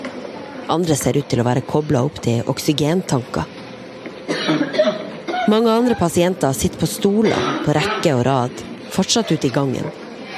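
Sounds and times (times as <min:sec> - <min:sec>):
murmur in a hospital corridor: 0:00.0 - 0:10.3
speech: 0:00.7 - 0:03.6, 0:04.5 - 0:10.0
patient coughing in a hospital corridor in Spain: 0:04.3 - 0:05.5.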